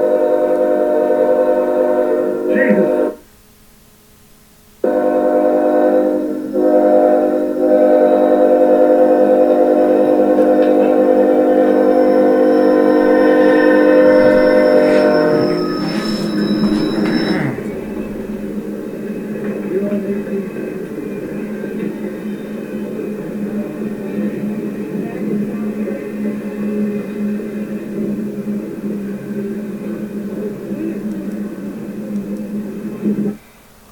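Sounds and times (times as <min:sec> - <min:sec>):
train horn blaring: 0:00.0 - 0:03.2, 0:04.8 - 0:20.2
rumble of the passing train: 0:00.0 - 0:33.4.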